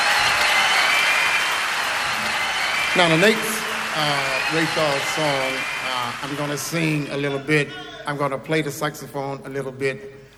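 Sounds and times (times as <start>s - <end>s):
audience applause at a live big-band performance: 0.0s - 7.4s
speech: 3.0s - 10.2s.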